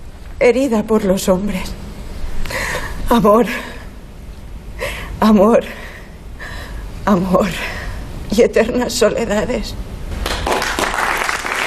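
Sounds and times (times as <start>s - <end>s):
speech: 0.4s - 1.8s, 3.1s - 3.7s, 5.2s - 5.8s, 7.1s - 7.7s, 8.3s - 9.9s
theatre audience applause: 10.2s - 11.6s.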